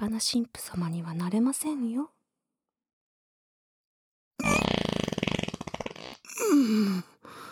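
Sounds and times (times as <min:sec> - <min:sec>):
speech: 0:00.2 - 0:02.2, 0:06.4 - 0:07.4
fart: 0:04.4 - 0:06.5.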